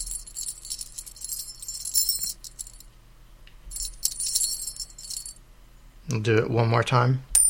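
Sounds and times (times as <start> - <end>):
video game bonus key pickup effect with bright metallic jingling: 0.0 - 2.9, 3.7 - 5.4
speech: 6.1 - 7.3.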